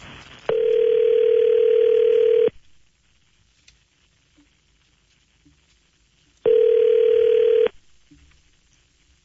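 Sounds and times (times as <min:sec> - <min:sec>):
telephone dial tone while placing a call: 0:00.5 - 0:02.5, 0:06.5 - 0:07.7.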